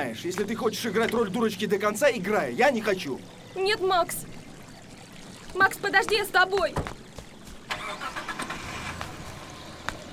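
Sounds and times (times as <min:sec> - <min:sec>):
speech: 0:00.0 - 0:04.4, 0:05.5 - 0:07.0
car engine starting: 0:07.7 - 0:10.1.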